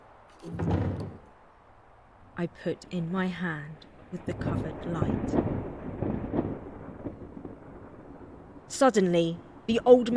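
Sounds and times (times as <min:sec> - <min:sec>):
speech: 0:00.4 - 0:00.6, 0:02.4 - 0:05.9, 0:08.7 - 0:10.1
door being slowly pushed open: 0:00.4 - 0:01.3.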